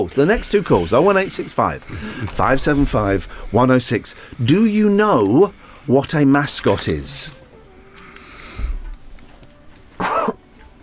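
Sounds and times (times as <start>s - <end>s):
speech: 0.0s - 7.4s
cough into crook of arm: 10.0s - 10.4s.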